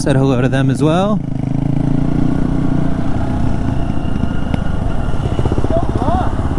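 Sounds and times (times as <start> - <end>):
speech: 0.0 - 1.5
Honda XR150L and KTM XCF-W 350 dirt bike engines running on a rough dusty trail: 0.0 - 6.5
high squeal: 2.8 - 6.5.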